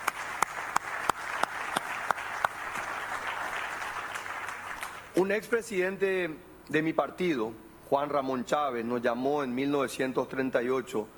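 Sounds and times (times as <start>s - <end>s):
crowd at a speech applauding: 0.0s - 5.1s
speech: 5.2s - 11.1s.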